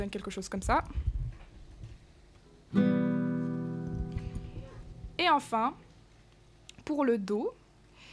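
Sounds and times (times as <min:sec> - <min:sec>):
speech: 0:00.0 - 0:01.2, 0:02.7 - 0:03.0, 0:05.2 - 0:05.8, 0:06.9 - 0:07.6
acoustic guitar strumming an E minor chord: 0:02.7 - 0:05.2.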